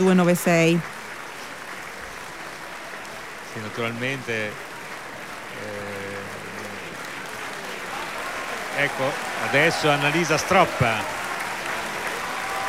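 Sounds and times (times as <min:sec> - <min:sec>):
speech: 0:00.0 - 0:01.0, 0:03.6 - 0:04.7, 0:05.6 - 0:06.0, 0:08.8 - 0:11.2
theatre audience applauding a singer: 0:00.0 - 0:12.6.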